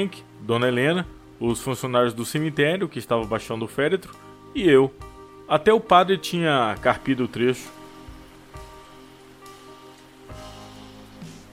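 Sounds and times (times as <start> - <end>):
speech: 0.0 - 7.8
heavy rain falling at a cemetery: 6.5 - 11.5.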